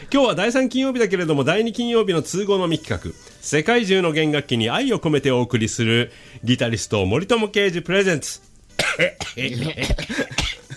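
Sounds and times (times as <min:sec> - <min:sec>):
speech: 0:00.1 - 0:10.4
person coughing after choking: 0:08.8 - 0:10.7.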